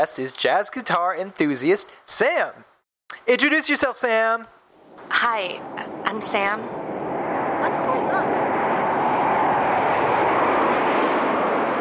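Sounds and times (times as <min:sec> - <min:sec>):
speech: 0:00.0 - 0:06.8, 0:07.6 - 0:08.6
airplane flying overhead: 0:04.7 - 0:11.8.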